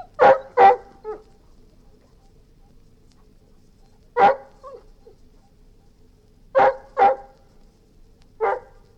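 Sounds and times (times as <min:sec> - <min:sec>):
Golden retriever giving sharp barks: 0:00.0 - 0:01.3, 0:04.2 - 0:04.9, 0:06.6 - 0:07.4, 0:08.4 - 0:08.8.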